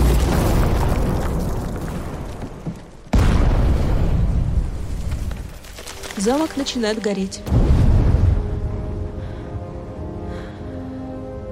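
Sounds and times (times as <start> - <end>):
gunpowder barrel explosion in a cave: 0.0 - 5.2, 7.5 - 8.8
speech: 6.2 - 7.6.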